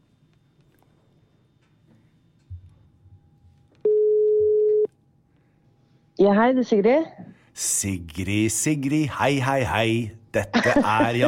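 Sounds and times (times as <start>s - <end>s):
ringback tone of an outgoing telephone call: 3.8s - 4.9s
speech: 6.2s - 11.2s
laughter: 9.7s - 11.2s.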